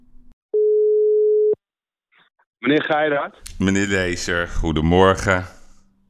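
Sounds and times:
telephone dial tone while placing a call: 0.6 - 1.6
speech: 2.6 - 5.6.

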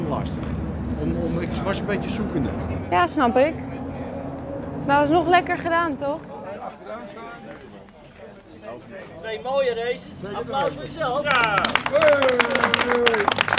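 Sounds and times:
speech: 1.1 - 3.7, 4.8 - 6.3, 8.6 - 13.5
loud applause for a driver after car races: 11.2 - 13.5.

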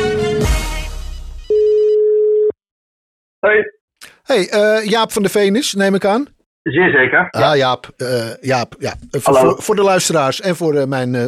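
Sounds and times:
telephone line ringing tone while placing a call: 1.5 - 2.6
speech: 3.5 - 11.2.

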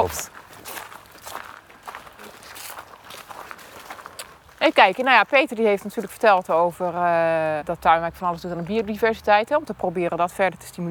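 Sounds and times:
faint voices murmuring: 0.0 - 0.3
speech: 0.0 - 0.3, 4.6 - 10.8
several people's footsteps crunching outdoors: 0.0 - 7.1.

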